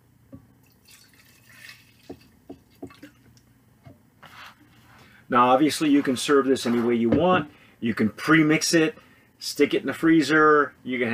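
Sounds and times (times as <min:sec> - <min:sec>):
tequila drink trickling into a tin cup: 0:00.6 - 0:03.3
speech: 0:05.3 - 0:11.1.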